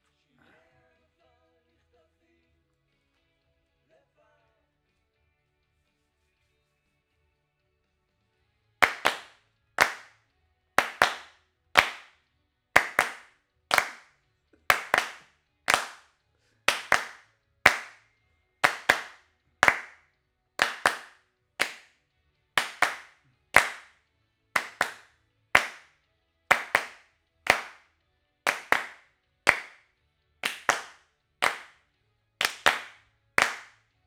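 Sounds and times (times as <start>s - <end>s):
claps: 8.8s - 10.1s, 10.8s - 12.1s, 12.8s - 14.1s, 14.7s - 16.1s, 16.7s - 18.0s, 18.6s - 20.0s, 20.6s - 21.9s, 22.6s - 23.9s, 24.6s - 25.9s, 26.5s - 27.8s, 28.5s - 29.8s, 30.4s - 31.8s, 32.4s - 33.8s.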